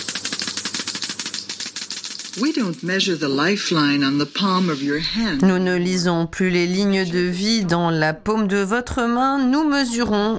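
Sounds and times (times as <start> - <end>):
Geiger counter clicking: 0.0 - 3.8
speech: 2.4 - 10.3.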